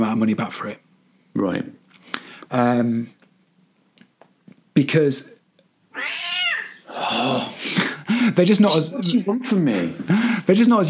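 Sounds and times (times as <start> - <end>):
speech: 0.0 - 1.8, 2.5 - 3.2, 4.8 - 5.4, 7.0 - 10.8
cat meowing: 5.9 - 6.8.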